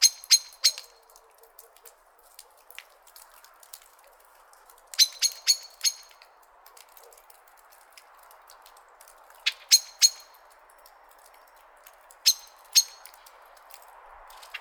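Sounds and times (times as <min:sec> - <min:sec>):
common blackbird sharp metallic clicking calls: 0:00.0 - 0:03.4, 0:04.8 - 0:07.8, 0:09.3 - 0:14.5.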